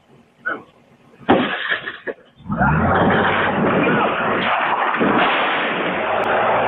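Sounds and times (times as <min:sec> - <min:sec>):
SUV hitting an unmarked vehicle and a parked car: 0:01.2 - 0:06.6
SUV engine roaring and revving hard with a deep low rumble: 0:02.4 - 0:06.6
agent breaking an SUV window: 0:02.7 - 0:06.6
gunshots fired down a residential street: 0:02.8 - 0:06.5.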